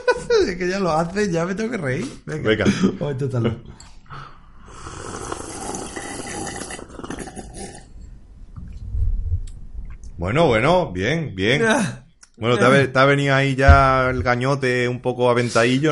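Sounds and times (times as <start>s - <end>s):
laughter: 0.0s - 0.6s
speech: 0.4s - 3.8s, 10.2s - 15.9s
person slurping a drink: 4.6s - 8.0s
soft low thump: 13.7s - 14.3s.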